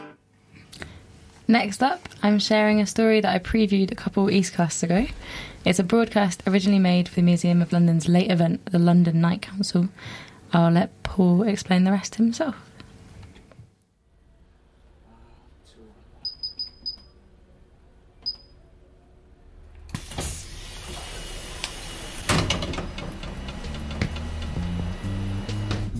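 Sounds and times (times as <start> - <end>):
speech: 1.5 - 12.7
short electronic beeps inside a London night bus: 16.2 - 17.2
night bus doors hissing open: 19.9 - 25.9.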